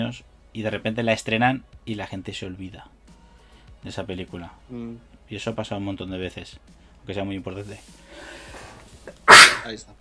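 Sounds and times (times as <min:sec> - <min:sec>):
speech: 0:00.1 - 0:03.0, 0:03.8 - 0:08.5, 0:09.6 - 0:10.0
breathy intake: 0:08.1 - 0:09.7
loud sneeze: 0:08.6 - 0:09.7.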